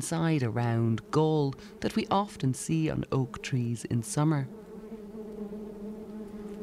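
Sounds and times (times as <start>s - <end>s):
speech: 0.0s - 4.6s
wasp buzzing: 0.0s - 6.6s.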